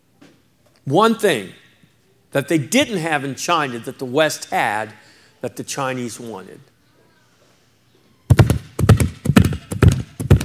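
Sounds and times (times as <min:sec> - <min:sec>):
speech: 0:00.9 - 0:01.6, 0:02.3 - 0:06.7
horse hooves clip-clopping in a trot: 0:08.3 - 0:10.4.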